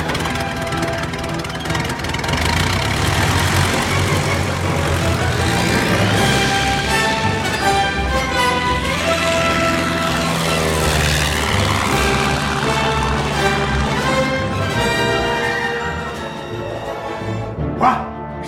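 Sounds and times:
airplane propeller engine drone during takeoff: 0.0 - 17.7.

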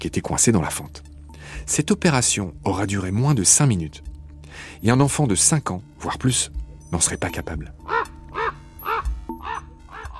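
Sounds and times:
speech: 0.0 - 7.9
crow cawing: 7.9 - 10.1.

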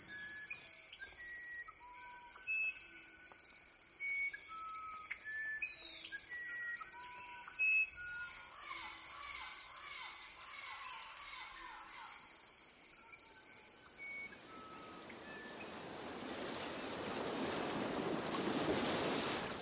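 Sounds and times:
musician wren whistled song: 0.0 - 12.1, 13.0 - 15.8
steady high insect drone: 0.0 - 19.5
ocean waves rushing surf: 14.2 - 19.5.

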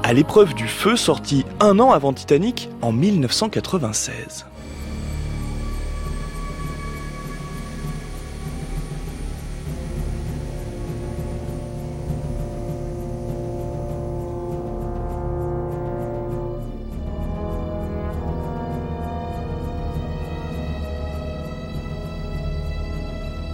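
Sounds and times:
sustained string tones: 0.0 - 23.5
speech: 0.1 - 4.6
sustained low brass tones: 4.5 - 23.1
percussion ostinato: 4.5 - 23.5.

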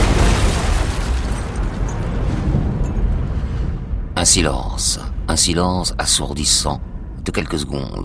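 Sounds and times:
powerful explosion with deep sustained roar: 0.0 - 5.3
crackling broadband noise: 0.0 - 8.0
speech: 4.2 - 8.0.

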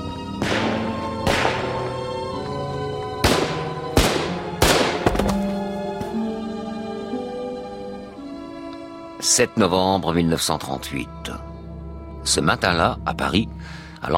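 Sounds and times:
steady sustained musical drone: 0.0 - 14.1
gunshots fired inside an embassy office: 0.4 - 1.9, 3.2 - 5.3
speech: 9.3 - 11.5, 12.2 - 14.1.

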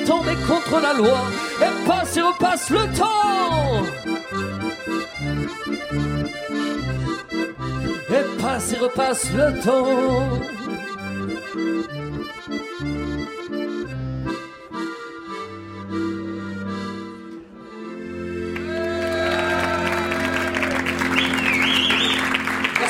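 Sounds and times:
speech: 0.0 - 10.9
song with sustained instrumental chords: 0.0 - 22.8
large audience applause: 18.5 - 22.8
cheers: 18.6 - 22.8
whistles: 21.0 - 22.6.

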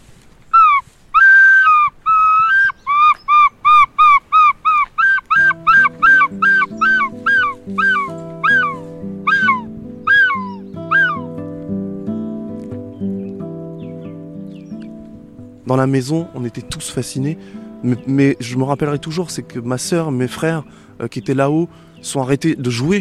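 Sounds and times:
person imitating a gull call: 0.6 - 11.3
speech: 15.7 - 22.9.

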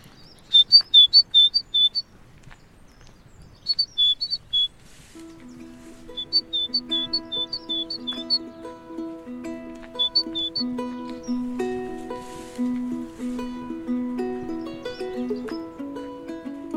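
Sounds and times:
tit chirping: 0.2 - 2.1, 3.5 - 4.8, 6.0 - 8.5, 9.8 - 11.4
steady low tonal hum: 3.7 - 16.7.

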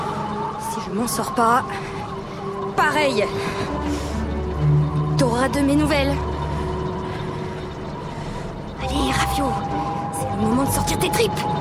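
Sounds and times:
propeller airplane engine droning: 0.0 - 11.5
speech: 0.8 - 2.0, 2.8 - 6.3, 8.8 - 11.5.

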